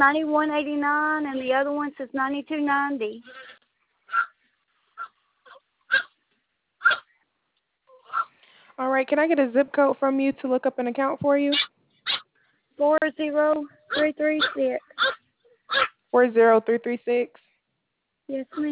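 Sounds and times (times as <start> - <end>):
speech: 0.0 - 3.5, 8.8 - 11.7, 12.8 - 17.4, 18.3 - 18.7
dog barking during a phone call: 4.1 - 4.4, 5.0 - 6.2, 6.8 - 7.1, 8.1 - 8.3, 11.5 - 12.3, 13.9 - 16.0.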